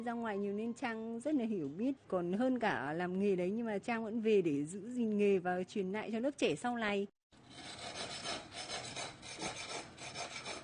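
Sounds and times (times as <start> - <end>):
speech: 0.0 - 7.8
hand saw or file rasping on wood in an inlay workshop: 7.5 - 10.6.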